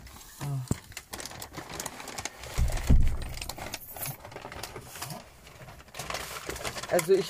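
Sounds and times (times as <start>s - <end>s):
paper and plastic food delivery bags rustling and crinkling: 0.0s - 7.2s
speech: 6.9s - 7.2s.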